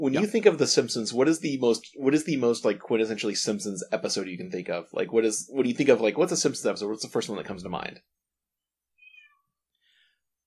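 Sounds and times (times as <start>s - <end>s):
speech: 0.0s - 8.2s
cat meowing: 9.0s - 9.5s.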